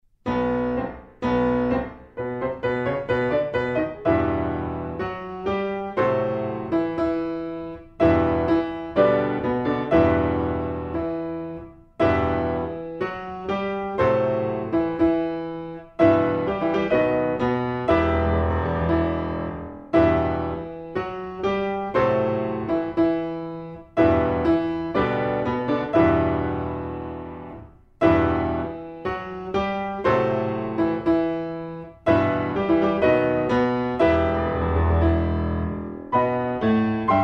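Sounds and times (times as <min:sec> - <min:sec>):
solo piano: 0:00.0 - 0:37.2.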